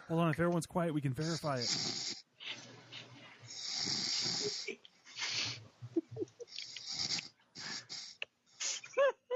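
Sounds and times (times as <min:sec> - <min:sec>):
speech: 0:00.1 - 0:02.6
person snoring while asleep: 0:01.2 - 0:02.2, 0:03.5 - 0:05.6, 0:06.6 - 0:08.2
squeaky whistling snorts: 0:03.5 - 0:05.6, 0:06.5 - 0:08.9.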